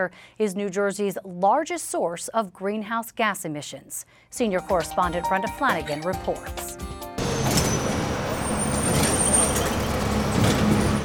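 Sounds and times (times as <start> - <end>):
speech: 0.0 - 6.9
bus air brakes hissing: 7.2 - 11.0
heavy diesel bus engines rumbling at a depot: 7.2 - 11.0
low traffic drone: 7.2 - 11.0.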